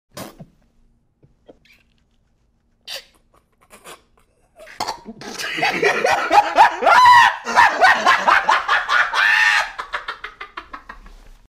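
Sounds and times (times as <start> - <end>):
man laughing: 3.2 - 11.2.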